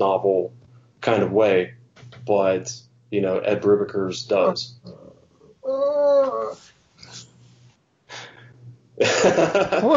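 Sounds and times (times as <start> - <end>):
speech: 0.0 - 5.0, 9.0 - 9.9
puppy growling behind a closed door in a studio: 5.6 - 6.6
laughter: 9.0 - 9.9.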